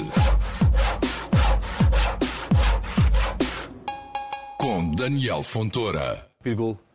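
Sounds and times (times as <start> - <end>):
handsaw sawing through wood: 0.0 - 3.6
speech: 5.0 - 6.9.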